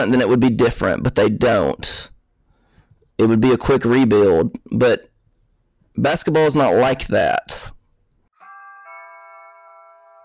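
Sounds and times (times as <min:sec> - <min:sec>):
speech: 0:00.0 - 0:02.1, 0:03.2 - 0:05.1, 0:06.0 - 0:07.8
home security system notification chime: 0:08.4 - 0:10.2.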